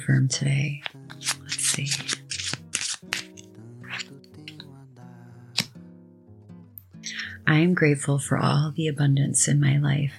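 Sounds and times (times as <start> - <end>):
speech: 0.0 - 2.2, 7.5 - 10.1
soft sustained music: 0.0 - 10.1
deck of cards shuffled: 0.8 - 4.6.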